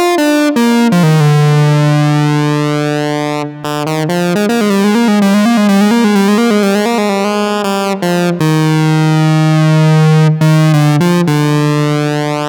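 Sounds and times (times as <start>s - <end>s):
VCO pulse wave synth lead with pulse width modulation: 0.1s - 12.4s.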